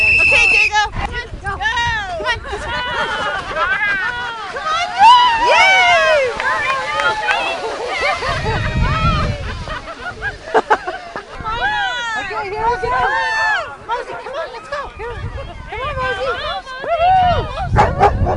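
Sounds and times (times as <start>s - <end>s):
murmur of crowd voices: 0.0s - 18.3s
laughter: 2.2s - 18.2s
low rumbling noise: 4.9s - 13.0s
pack of sled dogs barking and yipping at a kids' sled dog race: 17.7s - 18.3s.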